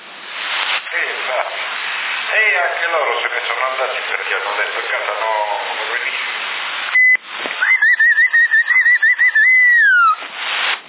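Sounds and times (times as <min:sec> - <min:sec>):
CB radio static bursts: 0:00.0 - 0:10.8
speech: 0:02.8 - 0:06.3
person whistling over a CB radio channel in Sassari: 0:07.0 - 0:10.2.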